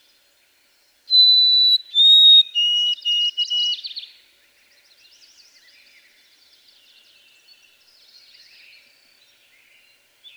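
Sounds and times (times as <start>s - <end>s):
white-throated sparrow song: 1.1s - 3.9s.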